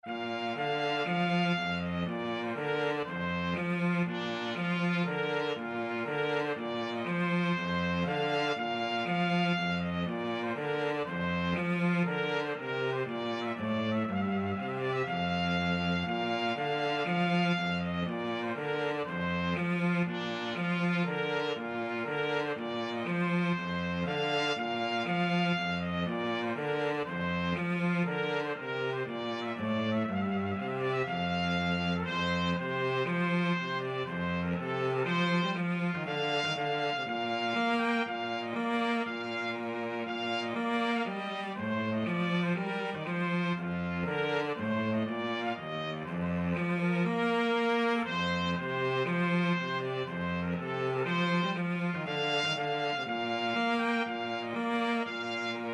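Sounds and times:
trumpet and cello duet: 0.0s - 55.7s.

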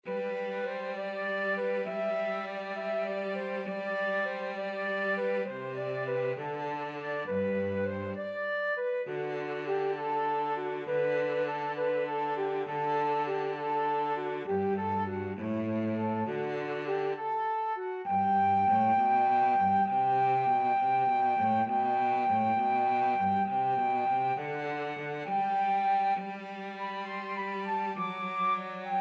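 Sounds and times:
cello in a pastorale duet: 0.0s - 29.0s
flute in a pastorale duet: 0.0s - 29.0s.

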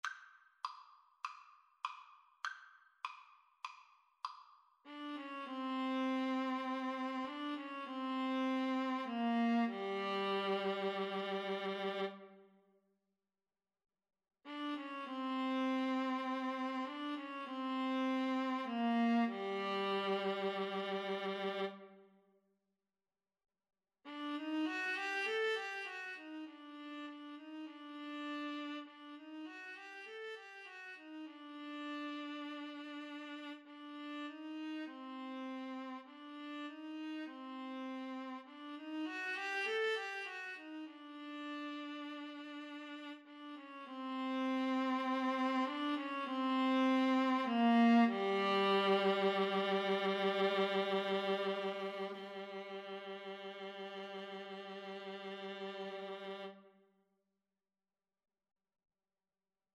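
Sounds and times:
viola: 4.9s - 12.4s, 14.5s - 22.0s, 24.1s - 56.7s
cello: 4.9s - 12.5s, 14.5s - 22.1s, 24.1s - 56.8s.

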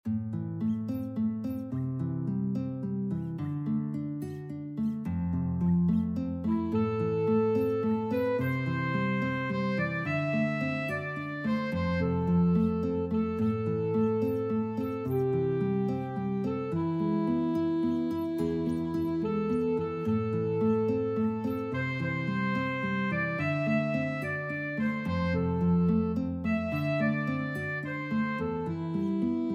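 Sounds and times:
guitar in an alto sax and guitar duet: 0.0s - 29.5s
alto sax in an alto sax and guitar duet: 6.5s - 29.5s.

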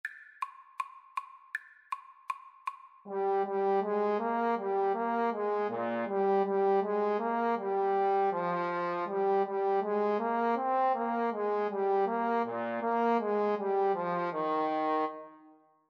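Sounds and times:
trombone in a duet with trumpet: 3.1s - 15.2s
trumpet in a duet with trombone: 3.1s - 15.5s.

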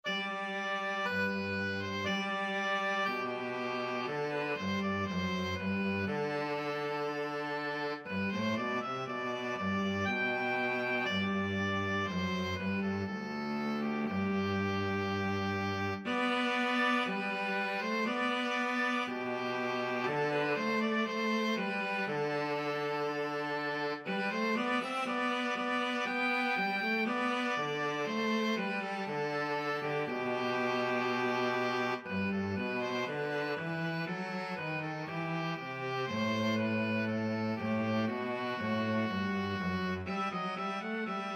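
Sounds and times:
cello playing a classical piece in duet: 0.0s - 41.3s
oboe playing a classical piece in duet: 0.0s - 41.3s.

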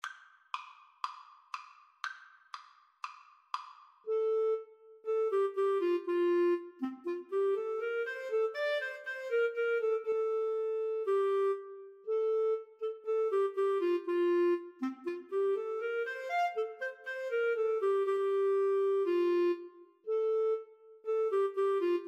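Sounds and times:
clarinet: 4.1s - 22.0s.

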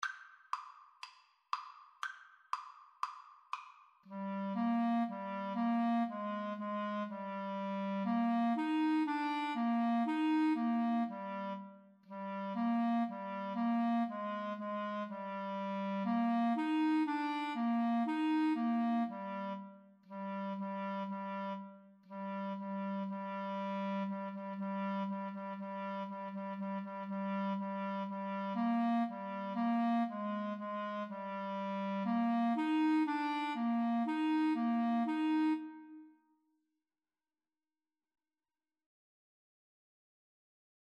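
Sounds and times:
clarinet duet playing a nursery rhyme: 4.1s - 36.2s.

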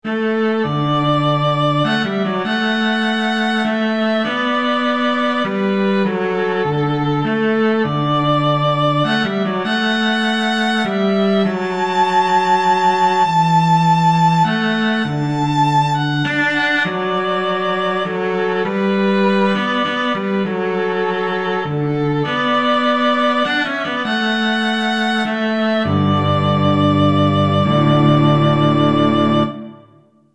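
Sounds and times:
violin playing a hymn in a duet: 0.0s - 30.1s
cello playing a hymn in a duet: 0.1s - 30.0s.

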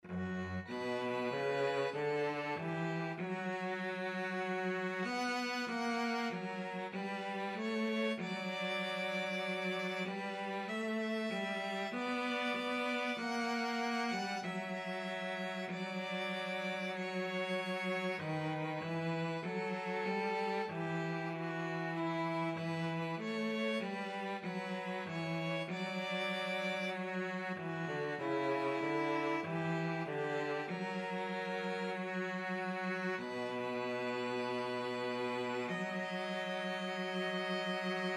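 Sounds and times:
cello: 0.0s - 38.1s
violin: 0.0s - 38.1s.

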